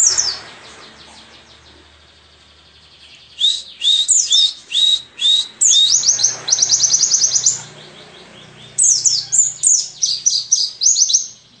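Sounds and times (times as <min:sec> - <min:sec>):
forest-type white-eye song: 0:00.0 - 0:11.5.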